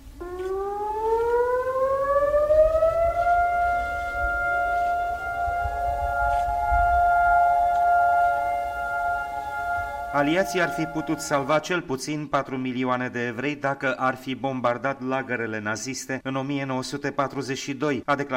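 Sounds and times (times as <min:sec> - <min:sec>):
civil defense siren in Israel wailing in Holocaust remembrance: 0:00.0 - 0:11.6
speech: 0:10.2 - 0:18.3.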